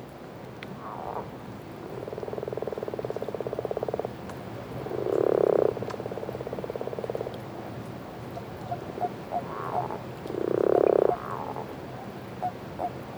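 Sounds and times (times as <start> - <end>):
common toads and common frogs calling together with pulsed croaking: 0.8 - 7.6, 8.2 - 13.1.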